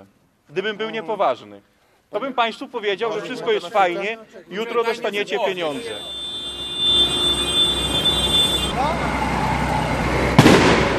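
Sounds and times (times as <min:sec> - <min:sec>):
low noise: 0:00.0 - 0:10.9
speech: 0:00.5 - 0:06.2
gas cannon wild boar scarer firing: 0:10.4 - 0:10.9.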